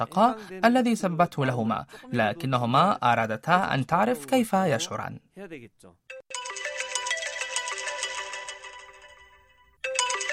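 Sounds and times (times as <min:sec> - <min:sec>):
speech: 0:00.0 - 0:06.4
phone ringtone with a bright repeating melodic pattern: 0:06.1 - 0:10.3.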